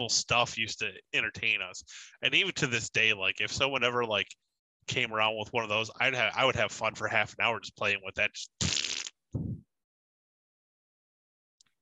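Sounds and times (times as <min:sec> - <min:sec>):
speech: 0:00.0 - 0:09.5
fart noises: 0:08.6 - 0:09.6.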